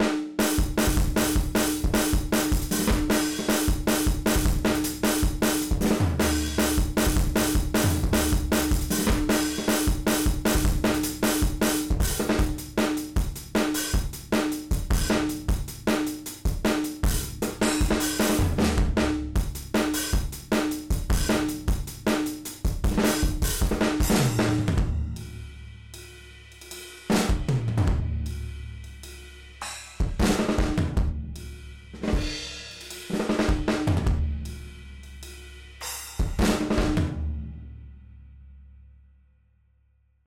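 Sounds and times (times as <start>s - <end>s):
distorted garage rock drums: 0.0s - 37.5s.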